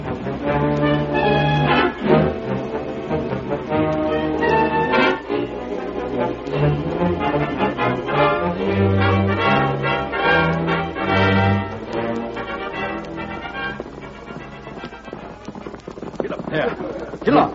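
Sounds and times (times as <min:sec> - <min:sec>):
hoofbeats of a horse galloping hard: 0:00.0 - 0:17.5
voices: 0:15.6 - 0:17.5.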